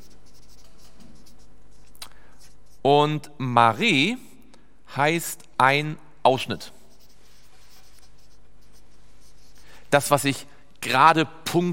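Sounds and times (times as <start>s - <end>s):
writing on a board: 0.0s - 2.8s, 6.8s - 9.8s
speech: 2.8s - 4.3s, 4.9s - 6.8s, 9.9s - 11.7s.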